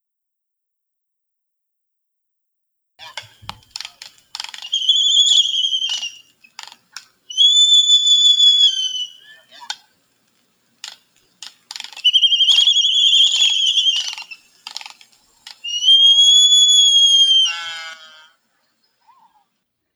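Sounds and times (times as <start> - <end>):
dry clicking rattles: 3.2 - 7.2, 9.7 - 15.7
seabird giving wheezy sky calls: 3.3 - 10.1, 10.7 - 18.1.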